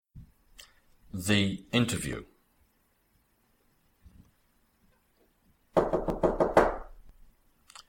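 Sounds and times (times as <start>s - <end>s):
speech: 1.1s - 2.3s
knocking on a door: 5.8s - 6.9s.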